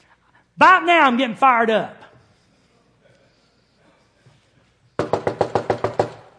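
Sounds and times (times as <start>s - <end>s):
speech: 0.6s - 2.0s
heavy knocks on a back door: 5.0s - 6.3s.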